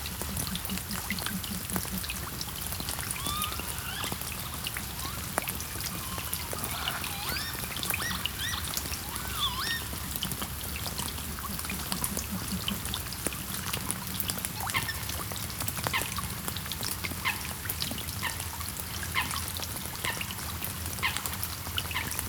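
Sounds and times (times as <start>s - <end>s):
Northern lapwing Vanellus vanellus calls: 0.0s - 13.1s
steady patter of rain: 0.0s - 22.2s.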